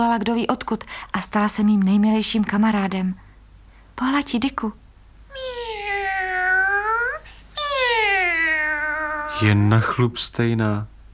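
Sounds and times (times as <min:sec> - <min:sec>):
speech: 0:00.0 - 0:03.2, 0:04.0 - 0:04.8, 0:09.4 - 0:10.9
cat meowing: 0:05.3 - 0:09.6.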